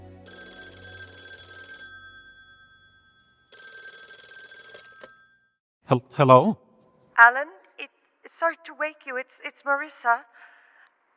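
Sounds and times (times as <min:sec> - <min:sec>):
telephone ringing with a bright metallic bell trill: 0:00.3 - 0:05.6
speech: 0:05.9 - 0:06.6, 0:07.2 - 0:07.6, 0:08.4 - 0:10.4.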